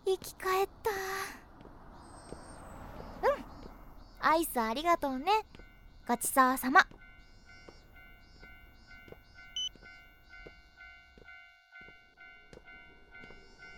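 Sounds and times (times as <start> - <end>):
train rumbling into a station: 0.0 - 9.7, 12.2 - 13.7
speech: 0.1 - 0.9, 4.3 - 5.5, 6.1 - 7.0
electronic beep: 7.1 - 10.5.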